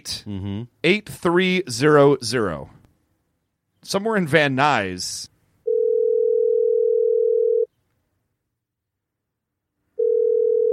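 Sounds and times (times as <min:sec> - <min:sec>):
speech: 0:00.0 - 0:02.8, 0:03.8 - 0:05.3
ringing tone of a phone call to a fax machine: 0:05.6 - 0:07.7, 0:10.0 - 0:10.7.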